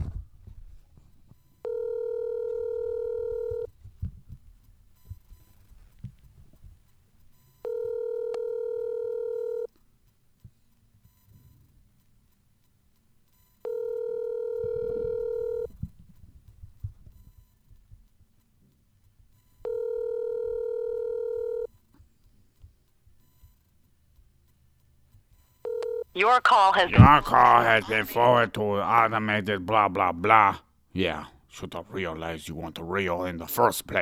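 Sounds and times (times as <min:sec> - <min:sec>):
steady electronic telephone dial tone: 0:01.4 - 0:03.8, 0:07.4 - 0:09.7, 0:13.4 - 0:15.9, 0:19.5 - 0:21.8, 0:25.6 - 0:28.4
speech: 0:26.2 - 0:34.0.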